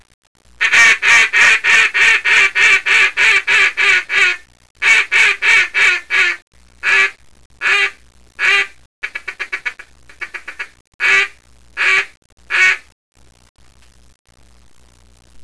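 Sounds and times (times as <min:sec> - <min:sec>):
acrylic double reed duck call blown in a very small room: 0:00.6 - 0:12.9.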